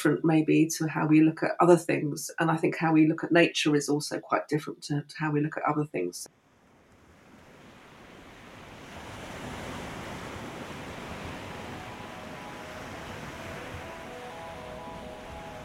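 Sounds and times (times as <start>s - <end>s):
speech: 0.0s - 6.4s
sea waves washing against the coast at Whitby: 6.7s - 15.6s
wind hiss: 7.0s - 15.6s.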